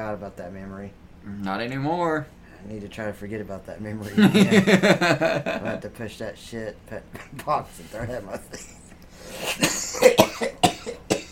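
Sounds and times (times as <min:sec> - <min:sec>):
speech: 0:00.0 - 0:10.5
laughter: 0:04.0 - 0:05.8
sharp hacking coughs: 0:08.5 - 0:11.3.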